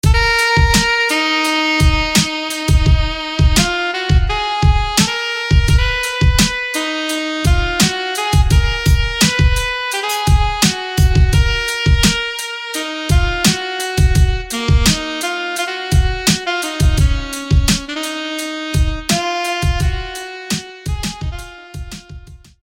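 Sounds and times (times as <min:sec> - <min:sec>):
alto saxophone: 0:00.0 - 0:22.6.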